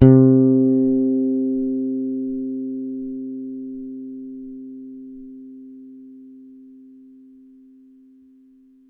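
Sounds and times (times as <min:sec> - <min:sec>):
electric bass one-shot note C: 0:00.0 - 0:03.8.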